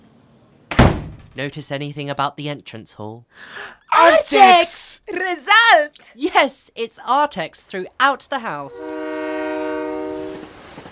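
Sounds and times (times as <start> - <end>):
speech: 1.4 - 9.2
train horn blaring in one long steady tone: 8.7 - 10.8.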